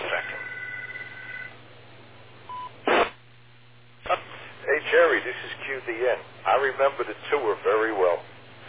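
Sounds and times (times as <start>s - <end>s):
short electronic telephone tone: 0.1s - 1.6s
brief single beep: 2.5s - 2.7s
sharp burst of noise: 2.8s - 3.2s
speech: 5.8s - 8.3s.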